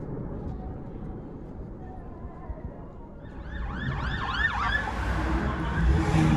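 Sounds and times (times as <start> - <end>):
ambulance siren wailing: 3.3 - 6.3.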